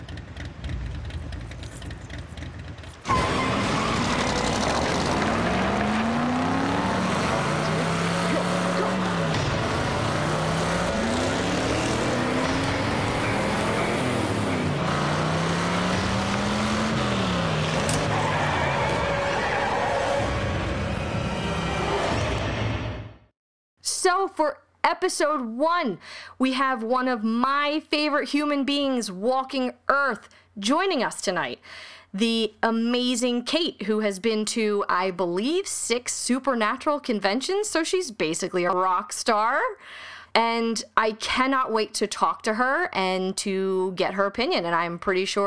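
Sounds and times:
car engine revving through gear shifts: 0.0 - 22.5
speech: 24.3 - 45.4.

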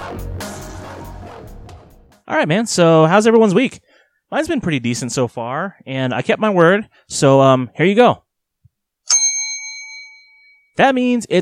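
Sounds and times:
speech: 2.3 - 8.2, 10.8 - 11.4
bell strike ringing: 9.1 - 10.7.

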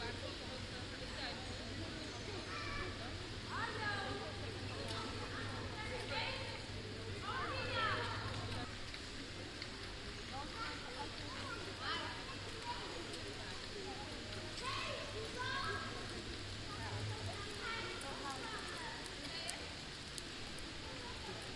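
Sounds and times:
leaves of plane trees rustling in wind: 0.0 - 21.5
children's voices shouting and chattering on an open square: 2.2 - 8.6, 10.3 - 19.8.

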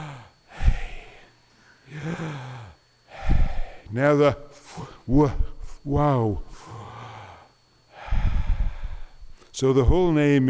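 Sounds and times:
slow deep breaths drawn in close to the microphone: 0.0 - 3.9, 4.6 - 5.8, 6.4 - 9.5
speech: 3.9 - 6.7, 9.6 - 10.4.

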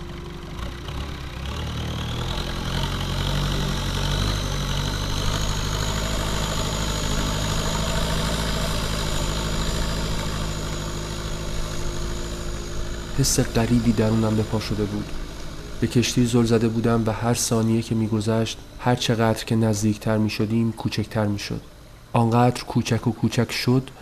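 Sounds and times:
boat motor running: 0.0 - 21.1
speech: 13.2 - 24.0.

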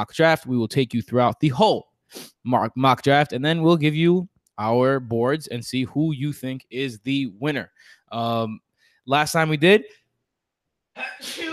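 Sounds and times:
speech: 0.0 - 10.0, 11.0 - 11.5
sneeze: 11.0 - 11.5.

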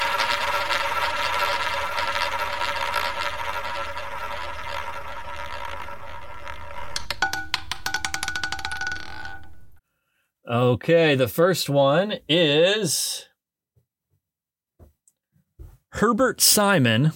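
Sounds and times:
prize wheel spinning on a random selection machine: 0.0 - 9.8
speech: 10.6 - 13.3, 16.0 - 17.1.

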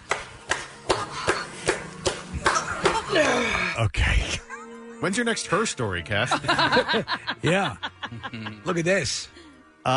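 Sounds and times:
sharp slaps: 0.0 - 3.3
speech: 5.0 - 9.9
laughter: 6.2 - 9.0.

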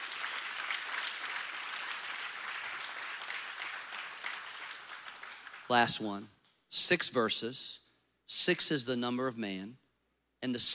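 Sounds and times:
audience applauding: 0.0 - 6.0
speech: 5.7 - 9.8, 10.4 - 10.7.

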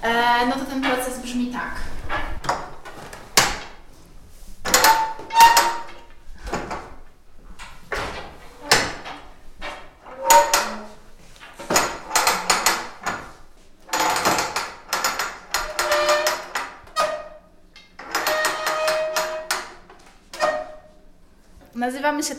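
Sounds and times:
speech: 0.0 - 1.9, 22.0 - 22.3
wooden loom creaking as woven fabric is wound onto the roller: 2.0 - 3.8, 4.6 - 7.0, 7.6 - 20.9.

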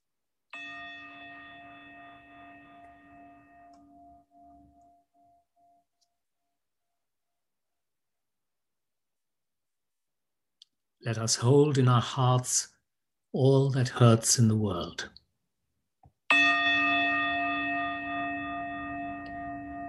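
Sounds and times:
meditation chime ringing: 0.6 - 6.2, 16.3 - 19.8
speech: 11.0 - 12.7, 13.3 - 15.2.

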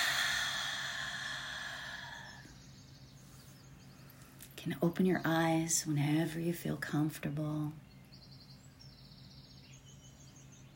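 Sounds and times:
deep breath released at the close of a meditation: 0.0 - 2.6
speech: 4.6 - 7.8.

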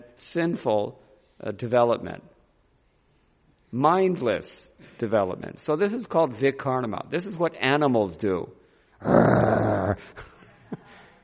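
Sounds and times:
speech: 0.2 - 2.3, 3.7 - 10.3
person imitating the snarling growl of a dog approached while eating: 9.0 - 10.2.

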